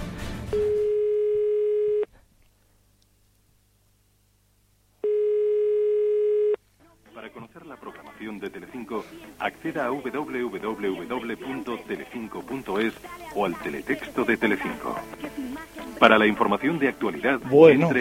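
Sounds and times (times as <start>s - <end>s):
telephone line ringback buzzing tones: 0.5s - 2.1s, 5.0s - 6.6s
speech: 9.4s - 17.9s.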